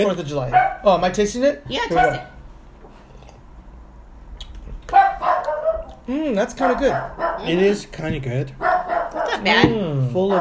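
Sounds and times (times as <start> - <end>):
speech: 0.0 - 2.4, 6.1 - 8.7, 9.3 - 10.3
dog barking angrily: 0.5 - 0.9, 1.9 - 2.4, 4.9 - 6.0, 6.6 - 7.6, 8.6 - 9.6.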